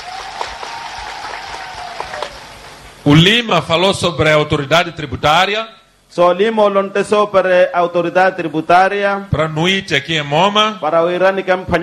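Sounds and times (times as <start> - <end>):
crowd in Moma applauding a speaker: 0.0 - 3.0
speech: 3.0 - 11.8.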